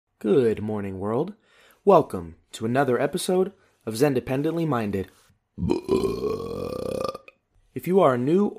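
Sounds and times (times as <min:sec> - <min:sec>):
speech: 0:00.2 - 0:06.8, 0:07.8 - 0:08.5
long loud croaky burp: 0:05.6 - 0:07.4.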